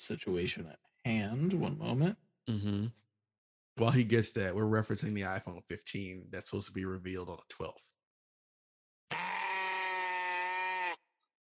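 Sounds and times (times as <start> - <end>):
speech: 0.0 - 3.0, 3.8 - 8.0
sheep bleat played from a soundboard: 9.1 - 11.0.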